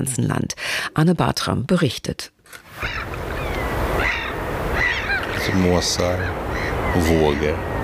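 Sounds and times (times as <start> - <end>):
speech: 0.0 - 3.2, 5.4 - 7.7
gull cries: 2.7 - 7.8
sea surf roaring: 2.7 - 7.8.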